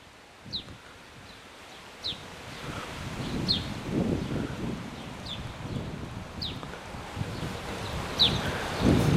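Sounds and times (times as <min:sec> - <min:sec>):
leaves rustling: 0:00.0 - 0:09.1
wind rushing through trees in northeastern France: 0:00.0 - 0:09.1
bird chirping faintly: 0:00.5 - 0:06.7, 0:07.3 - 0:08.9.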